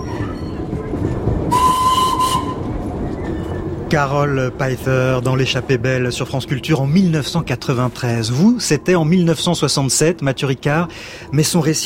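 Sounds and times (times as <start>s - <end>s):
old train wagons rumbling along rails in India: 0.0s - 11.8s
sustained whistle tone: 1.5s - 2.7s
speech: 3.9s - 11.8s.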